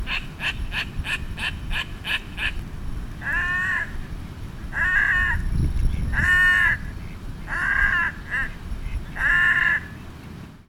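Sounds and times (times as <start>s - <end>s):
red-necked grebe calling: 0.0s - 2.6s, 4.7s - 10.0s.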